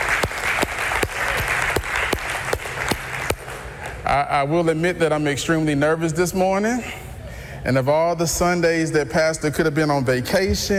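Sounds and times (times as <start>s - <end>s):
audience applause: 0.0s - 4.0s
speech: 4.1s - 7.0s, 7.6s - 10.7s.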